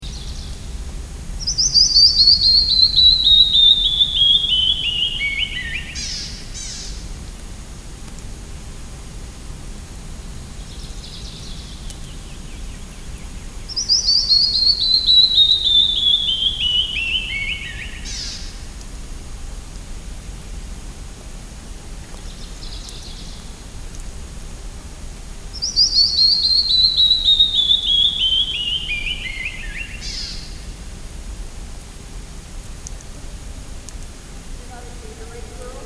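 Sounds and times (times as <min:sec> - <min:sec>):
canyon wren singing: 0:00.0 - 0:07.0, 0:09.9 - 0:18.6, 0:25.5 - 0:30.8, 0:34.4 - 0:35.8.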